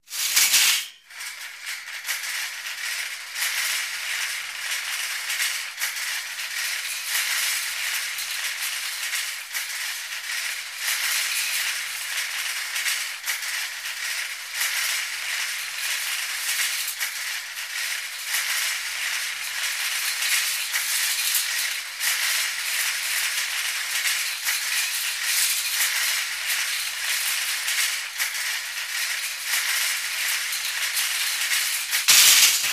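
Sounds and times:
shopping cart rolling: 0.1s - 32.7s.

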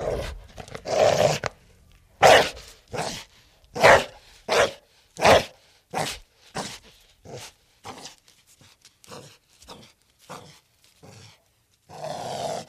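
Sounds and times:
pit bull barking: 2.2s - 3.2s, 3.8s - 7.5s.

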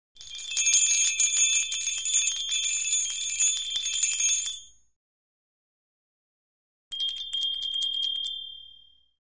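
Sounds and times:
jumbled bells: 0.2s - 4.7s, 6.9s - 9.2s.

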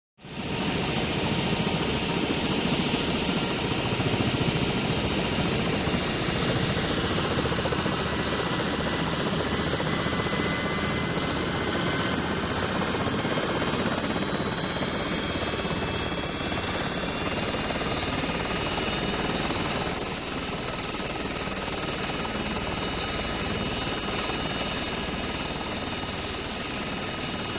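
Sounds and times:
Huey helicopter: 0.2s - 27.5s.

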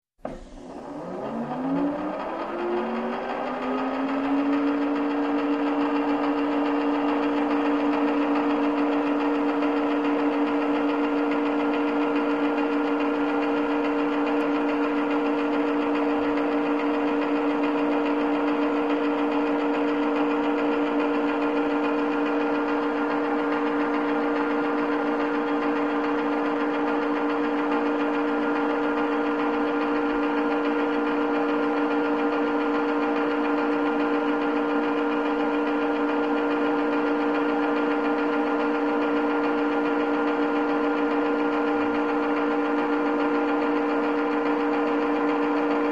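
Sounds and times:
motor turning on and winding up: 0.2s - 45.9s.

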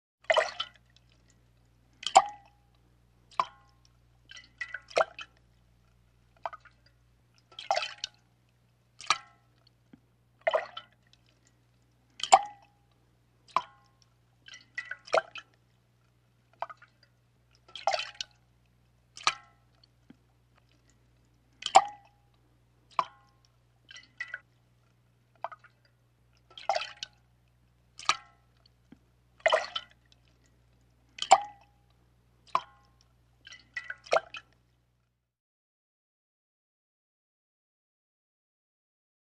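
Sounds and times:
water plopping in a metal bucket: 0.3s - 1.4s, 2.0s - 5.4s, 6.4s - 8.3s, 9.0s - 9.6s, 10.4s - 11.3s, 12.2s - 12.8s, 13.5s - 15.6s, 16.5s - 18.5s, 19.2s - 19.8s, 21.6s - 22.3s, 22.9s - 24.5s, 25.4s - 27.3s, 28.0s - 28.7s, 29.4s - 30.4s, 31.1s - 31.8s, 32.5s - 34.6s.

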